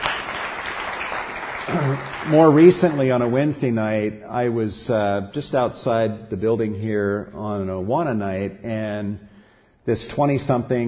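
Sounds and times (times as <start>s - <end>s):
audience applause: 0.0s - 3.7s
speech: 1.7s - 10.8s.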